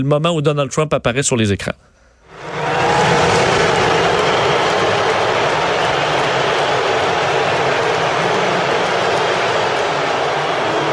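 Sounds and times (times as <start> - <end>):
speech: 0.0 - 1.9
large stadium crowd applauding and shouting: 2.3 - 10.9.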